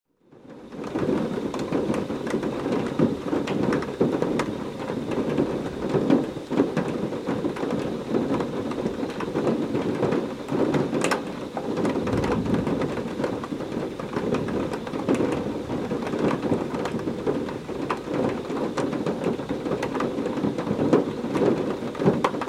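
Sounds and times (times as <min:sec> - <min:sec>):
large raindrops: 0:00.3 - 0:22.4
thunder rumbling: 0:11.6 - 0:20.9.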